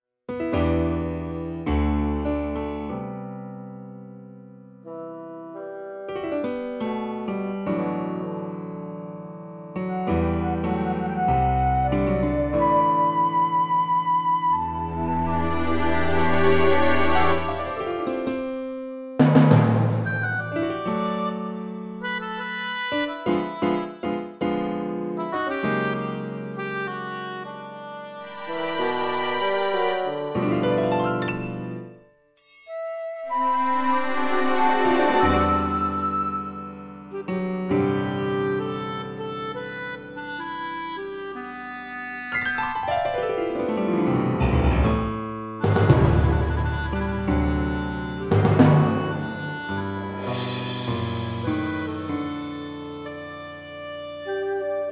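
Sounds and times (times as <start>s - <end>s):
fantasy for piano and orchestra: 0.4s - 4.2s, 4.8s - 54.9s.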